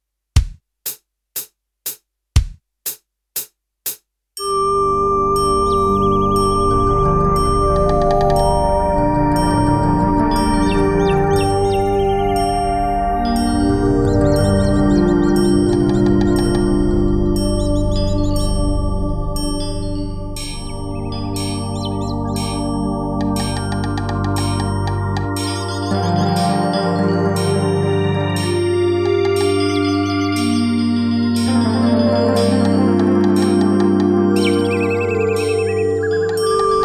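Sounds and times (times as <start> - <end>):
recorder performance: 4.4 - 36.8.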